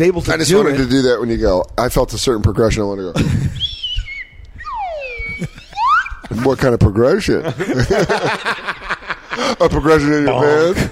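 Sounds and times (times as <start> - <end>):
speech: 0.0 - 3.6, 6.3 - 8.8, 9.4 - 10.8
low noisy background: 0.0 - 10.8
slide whistle: 3.6 - 6.3
laughter: 5.1 - 6.6, 7.4 - 10.8.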